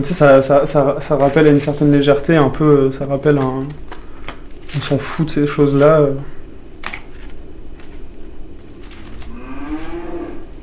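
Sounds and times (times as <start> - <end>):
speech: 0.0 - 4.0, 4.7 - 6.4
outdoor hum: 0.0 - 10.6
cow mooing: 9.3 - 10.6.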